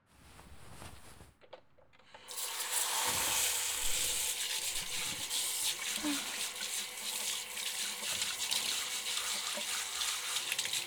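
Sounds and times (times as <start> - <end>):
faint rustling: 0.0 - 1.8
hot water running from a tap during a hair wash: 2.3 - 10.8.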